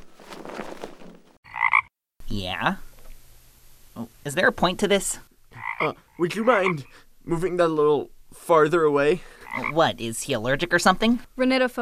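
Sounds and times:
frog croaking: 1.5s - 1.9s, 5.5s - 6.9s, 9.4s - 9.9s
speech: 2.3s - 2.9s, 4.0s - 11.8s.

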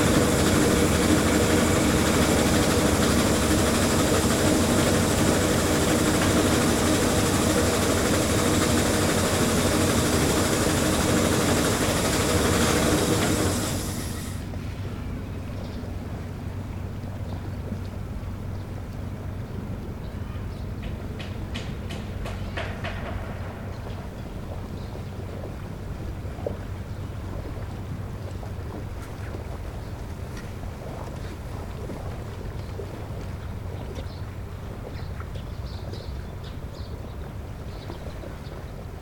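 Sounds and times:
rattling burst: 0.0s - 14.5s
boat engine roaring: 0.0s - 39.0s
low hum: 0.0s - 39.0s.

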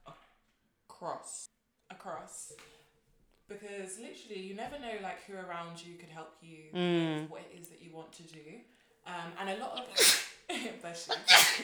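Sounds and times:
speech: 1.0s - 2.8s, 3.5s - 11.6s
person sneezing: 9.8s - 10.3s, 11.1s - 11.6s.

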